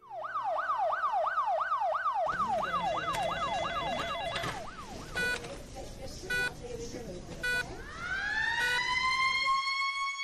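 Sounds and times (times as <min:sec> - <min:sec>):
police siren wailing: 0:00.0 - 0:05.4, 0:07.8 - 0:10.1.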